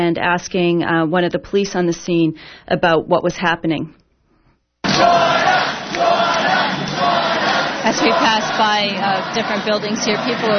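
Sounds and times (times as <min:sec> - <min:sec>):
speech: 0:00.0 - 0:04.0, 0:07.9 - 0:10.5
large protest crowd chanting and shouting: 0:04.8 - 0:10.5.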